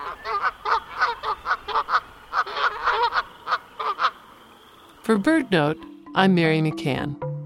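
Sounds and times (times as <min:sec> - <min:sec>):
Canada goose honking: 0:00.0 - 0:04.2
speech: 0:05.1 - 0:07.2.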